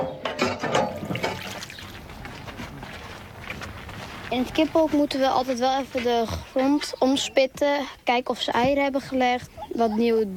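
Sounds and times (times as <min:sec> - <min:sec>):
hand water pump gushing water for chickens at a schoolyard: 0:00.9 - 0:02.1
water trickling from a hand pump: 0:00.9 - 0:03.4
speech: 0:04.3 - 0:10.3.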